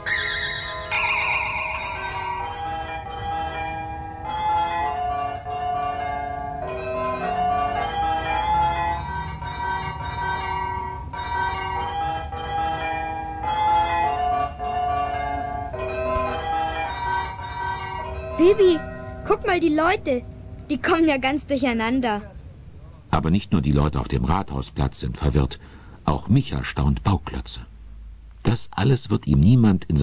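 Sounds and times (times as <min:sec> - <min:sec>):
town hall glockenspiel bells playing a melody on the town hall square: 0:00.0 - 0:21.0
speech: 0:18.4 - 0:18.8, 0:19.4 - 0:22.3, 0:23.2 - 0:27.7, 0:28.4 - 0:30.0.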